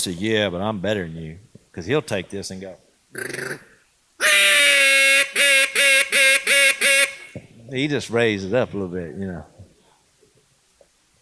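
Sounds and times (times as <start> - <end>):
speech: 0.0 - 3.7, 7.7 - 9.5
loud reedy contest-style duck call quacking: 3.2 - 7.4.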